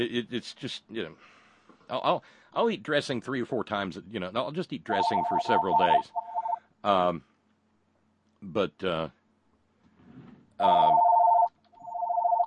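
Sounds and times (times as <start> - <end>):
speech: 0.0 - 6.2, 6.8 - 7.3, 8.4 - 9.2, 10.6 - 11.1
telephone ringing with a steady electronic tone: 4.9 - 6.6, 10.6 - 12.4.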